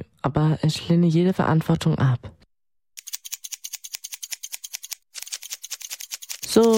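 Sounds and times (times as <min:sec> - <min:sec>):
speech: 0:00.3 - 0:02.4, 0:06.6 - 0:06.7
scissors snipping hair during a haircut trimming only the tips: 0:03.0 - 0:06.7.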